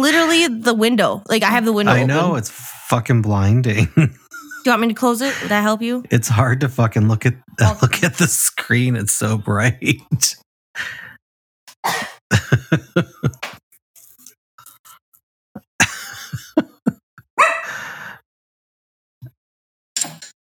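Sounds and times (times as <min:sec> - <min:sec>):
speech: 0:00.0 - 0:11.0, 0:11.8 - 0:13.4
laughter: 0:01.6 - 0:10.3, 0:12.3 - 0:13.4, 0:15.8 - 0:17.0
dog barking loudly: 0:17.4 - 0:17.7.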